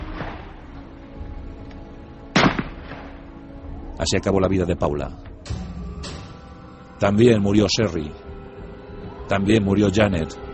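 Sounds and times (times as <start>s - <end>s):
rifle shots: 2.4s - 3.1s
speech: 4.0s - 5.6s, 7.0s - 8.2s, 9.3s - 10.4s.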